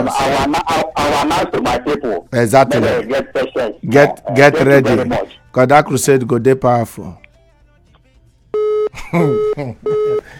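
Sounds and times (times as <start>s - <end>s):
speech: 0.0s - 7.2s, 8.9s - 10.3s
phone line beeping with an incoming call: 8.6s - 10.3s.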